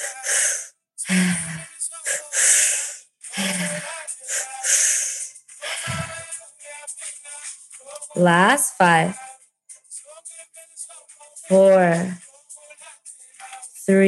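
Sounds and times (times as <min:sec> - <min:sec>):
forceful rapid breathing during a guided breathwork session: 0:00.0 - 0:07.2
speech: 0:01.1 - 0:01.3, 0:08.2 - 0:09.2, 0:11.5 - 0:12.2, 0:13.9 - 0:14.0.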